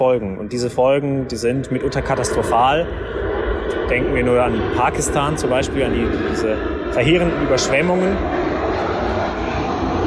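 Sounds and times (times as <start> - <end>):
speech: 0.0 - 8.9
airplane flying overhead: 0.0 - 10.0.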